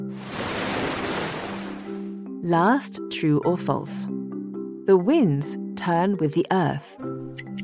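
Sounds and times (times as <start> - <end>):
ocean wave breaking and washing over the shore: 0.0 - 2.0
speech: 2.4 - 4.2, 4.8 - 7.0.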